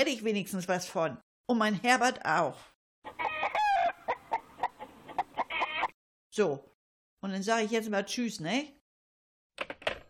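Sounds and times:
speech: 0.0 - 3.2, 6.3 - 8.8
chickens clucking: 3.0 - 6.0
rooster crowing: 3.1 - 4.4.

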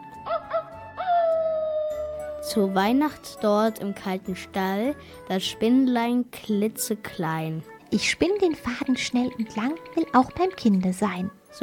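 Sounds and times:
wolf howling: 0.3 - 2.4
speech: 2.5 - 11.6.

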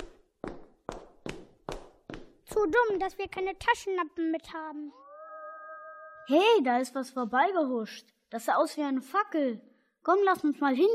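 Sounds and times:
footsteps on a hard surface in a castle: 0.0 - 3.3
speech: 2.6 - 5.0, 6.3 - 10.9.

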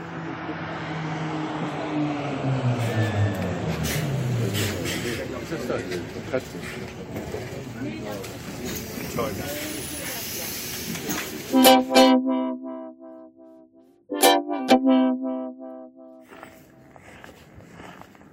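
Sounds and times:
rumble of passing traffic: 0.0 - 11.6, 16.2 - 18.3
speech: 5.5 - 9.9
church bells ringing: 11.6 - 16.4.

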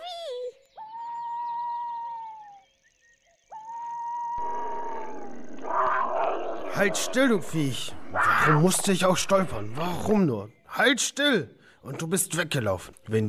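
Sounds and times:
young tiger growling: 4.4 - 10.2
speech: 6.8 - 13.2.

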